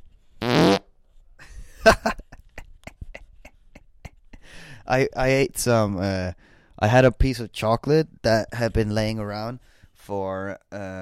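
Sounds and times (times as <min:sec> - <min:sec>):
fart noises: 0:00.4 - 0:00.9
speech: 0:01.8 - 0:02.2, 0:04.9 - 0:11.0.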